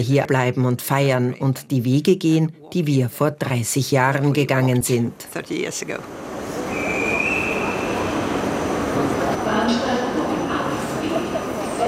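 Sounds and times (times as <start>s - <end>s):
speech: 0.0s - 6.5s
train rumbling in a railway station in Vienna Austria: 4.3s - 11.8s
murmur of indistinct voices: 5.5s - 11.8s.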